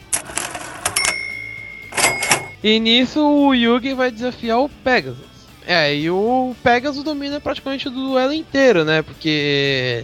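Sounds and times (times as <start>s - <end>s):
cash register rattling mechanical clunks: 0.0s - 2.6s
speech: 2.6s - 10.0s.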